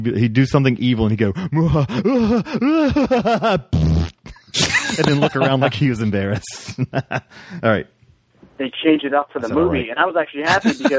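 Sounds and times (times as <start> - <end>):
speech: 0.0 - 3.8, 4.5 - 8.0, 8.6 - 10.9
person giving an evil cackle: 1.4 - 5.6, 10.5 - 10.9
voice blowing a buzzy raspberry imitating a fart: 3.7 - 4.7.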